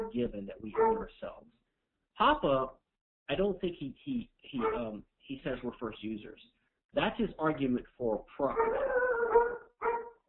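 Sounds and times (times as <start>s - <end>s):
dog barking: 0.0s - 1.1s, 4.6s - 5.0s, 8.5s - 10.2s
speech: 0.1s - 1.6s, 2.2s - 9.1s.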